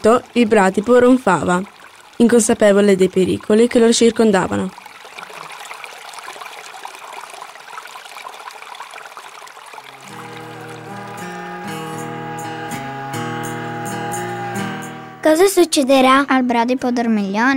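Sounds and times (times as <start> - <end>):
speech: 0.0 - 4.8, 15.4 - 17.5
rushing water of a steep waterfall: 9.8 - 15.2
tuneful music: 10.0 - 17.5.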